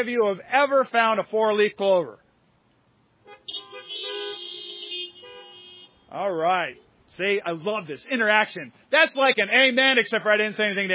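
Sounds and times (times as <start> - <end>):
speech: 0.0 - 2.2, 6.1 - 10.9
car horns honking: 3.2 - 8.4.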